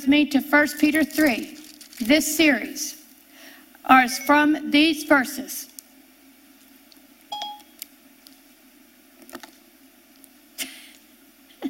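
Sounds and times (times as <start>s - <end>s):
speech: 0.0s - 3.0s, 3.8s - 5.7s
quiet hum: 0.0s - 11.6s
phone voice assistant electronic activation beep: 7.3s - 7.7s.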